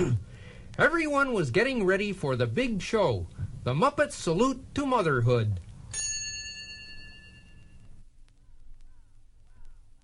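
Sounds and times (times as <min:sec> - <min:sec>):
speech: 0:00.8 - 0:06.0
bright bell chime signaling a page turn: 0:05.9 - 0:07.8.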